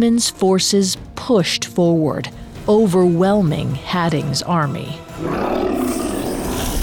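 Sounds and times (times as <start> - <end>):
speech: 0.0 - 5.7
giant charging into battle roaring: 5.2 - 6.8.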